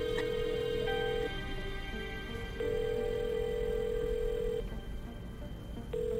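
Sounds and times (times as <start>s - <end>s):
ringback tone of an outgoing telephone call: 0.0s - 1.3s, 2.6s - 4.7s, 5.9s - 6.1s
low hum: 0.0s - 6.1s.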